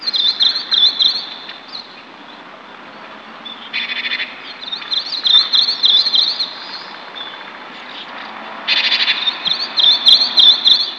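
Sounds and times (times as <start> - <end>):
birds: 0.0 - 10.9.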